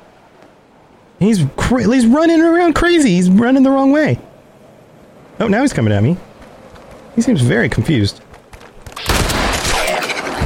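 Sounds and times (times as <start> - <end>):
speech: 1.2 - 4.3, 5.4 - 6.3, 7.2 - 8.2
video game gunshot: 8.8 - 10.4.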